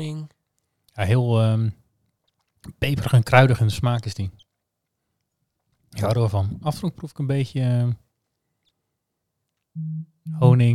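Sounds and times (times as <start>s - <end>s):
speech: 0.0s - 0.4s, 1.0s - 1.8s, 2.6s - 4.4s, 5.9s - 8.0s, 9.8s - 10.7s
short mobile phone vibration buzz: 9.8s - 10.5s.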